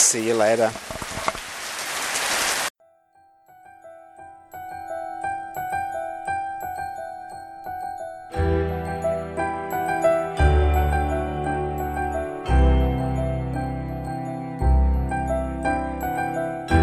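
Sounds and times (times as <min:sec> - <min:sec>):
heavy rain falling on surfaces: 0:00.0 - 0:02.7
speech: 0:00.1 - 0:01.0
gentle chiming musical tune: 0:02.8 - 0:16.8.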